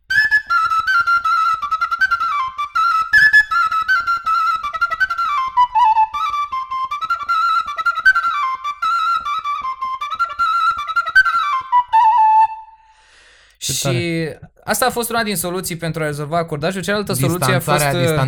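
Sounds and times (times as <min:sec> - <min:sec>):
Romanian fluier flute playing a brisk Moldavian dance tune: 0:00.1 - 0:12.9
speech: 0:13.8 - 0:18.2.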